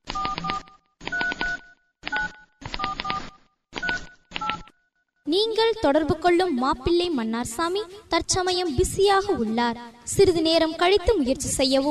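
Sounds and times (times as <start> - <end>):
dual-pitched touch-tone beeps of a telephone number dialled on a keypad: 0.2 - 4.7
speech: 5.3 - 11.8.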